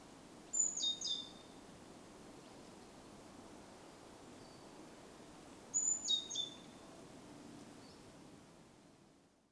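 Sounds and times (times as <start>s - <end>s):
Great tit Parus major call of thin high whistles and lower chirps: 0.6s - 1.3s, 5.8s - 6.6s.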